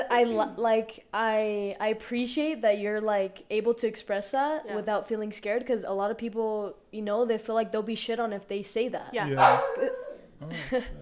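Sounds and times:
speech: 0.1s - 11.0s
dog barking: 9.4s - 10.2s
laughter: 9.7s - 11.0s.

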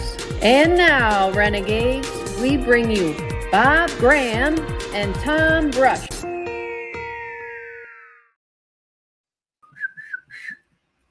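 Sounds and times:
speech: 0.4s - 6.1s
person whistling a short tune: 9.6s - 10.6s.

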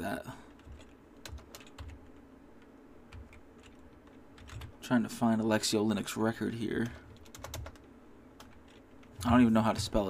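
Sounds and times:
typing on a computer keyboard: 0.5s - 2.2s, 3.1s - 4.8s, 6.8s - 10.0s
speech: 4.9s - 7.0s, 9.2s - 10.0s.

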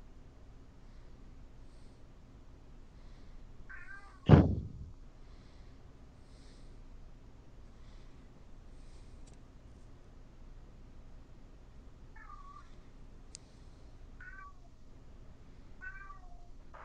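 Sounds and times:
steady low hum: 0.0s - 16.8s
cat meowing: 3.7s - 4.2s, 14.2s - 14.7s, 15.8s - 16.8s.

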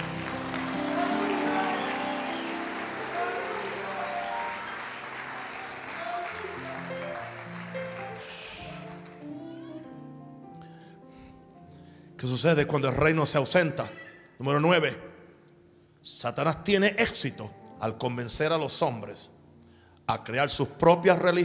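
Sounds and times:
large audience applause: 0.0s - 9.8s
voices shouting: 0.8s - 6.9s
speech: 12.2s - 15.1s, 16.0s - 19.3s, 20.1s - 21.4s.

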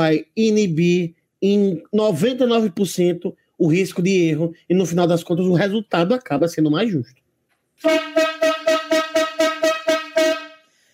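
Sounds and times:
speech: 0.0s - 7.2s, 7.8s - 8.4s
loud horn honking in short bright blasts: 7.8s - 10.8s.

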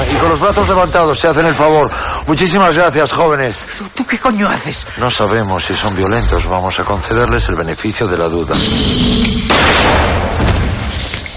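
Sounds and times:
speech: 0.3s - 10.0s
gunshot ripping into a car: 8.6s - 11.0s.

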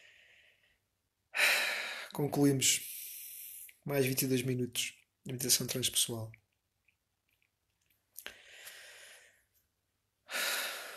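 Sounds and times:
slow deep breath in and fuller exhale: 0.0s - 2.2s, 8.3s - 9.5s, 10.2s - 10.9s
speech: 2.1s - 2.9s, 3.9s - 6.4s.

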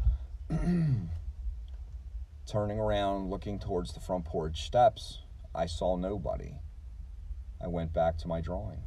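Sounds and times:
low rumble: 0.0s - 8.8s
voice imitating a young woman clearing her throat: 0.5s - 1.2s
speech: 0.6s - 1.1s, 2.5s - 6.7s, 7.6s - 8.8s.

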